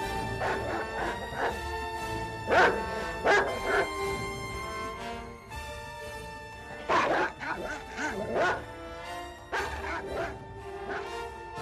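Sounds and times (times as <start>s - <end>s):
dog growling: 0.2s - 4.0s, 6.7s - 8.8s, 9.5s - 11.3s
dog barking and yipping: 0.2s - 4.1s, 6.7s - 11.3s.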